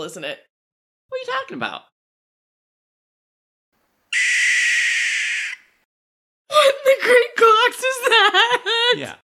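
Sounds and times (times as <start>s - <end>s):
speech: 0.0s - 0.5s, 1.1s - 1.9s, 6.5s - 9.2s
barn owl long harsh hissing scream: 4.1s - 5.8s
laughter: 7.8s - 9.2s.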